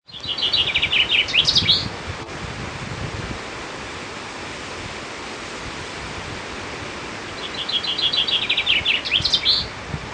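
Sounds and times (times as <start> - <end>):
Common chaffinch song with bright descending rattling phrases: 0.0 - 1.9, 7.2 - 9.8
steady broadband background hiss: 0.1 - 10.1.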